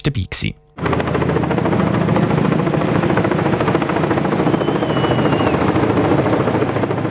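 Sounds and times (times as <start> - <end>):
speech: 0.0 - 1.4
helicopter flying in carrying a 20-metre Christmas fir over monastery grounds: 0.8 - 7.0
brief high whistling tone: 4.4 - 5.8.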